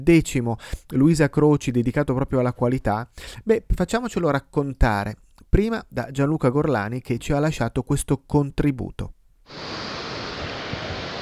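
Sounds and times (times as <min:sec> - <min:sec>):
speech: 0:00.0 - 0:09.9
babbling mountain stream water rushing: 0:09.5 - 0:11.1.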